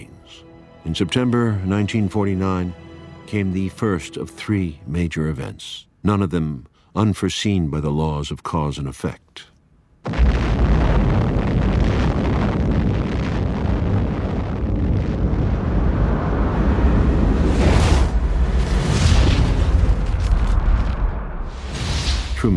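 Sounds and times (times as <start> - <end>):
speech: 0.3 - 10.3
atomic bomb explosion roar: 10.0 - 22.5.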